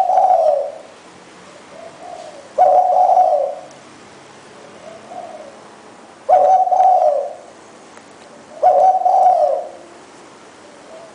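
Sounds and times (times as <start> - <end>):
Spotted Dove cooing: 0.0 - 3.7, 4.6 - 5.6, 6.2 - 7.5, 8.4 - 10.0, 10.6 - 11.1.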